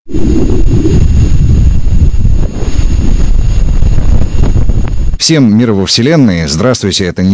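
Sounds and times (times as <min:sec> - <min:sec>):
wind-like roar of Venus from space: 0:00.0 - 0:05.2
speech: 0:05.3 - 0:07.3.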